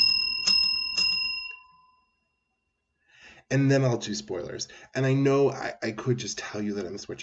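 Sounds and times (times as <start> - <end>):
handheld bell ringing: 0.0 - 2.2
speech: 3.5 - 7.2.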